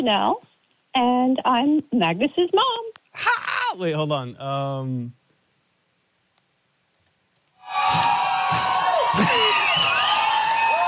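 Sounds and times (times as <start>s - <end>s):
speech: 0.0s - 5.2s, 9.1s - 9.5s
high whistles: 7.6s - 10.8s
loud crowd cheering and whooping: 7.6s - 10.8s
shouts: 7.6s - 10.8s
steady wall of applause-like noise: 7.6s - 10.8s.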